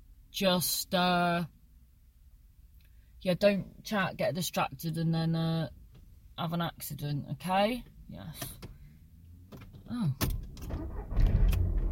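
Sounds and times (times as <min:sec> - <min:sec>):
speech: 0:00.4 - 0:01.6, 0:03.2 - 0:05.8, 0:06.4 - 0:08.7, 0:09.9 - 0:11.2
car engine starting: 0:08.4 - 0:11.8.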